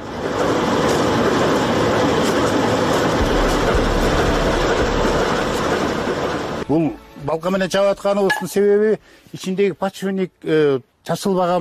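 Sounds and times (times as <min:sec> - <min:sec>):
freight train low engine drone: 0:00.0 - 0:07.7
freight train arriving at a railway station to haul coal: 0:00.0 - 0:08.2
speech: 0:06.7 - 0:11.6.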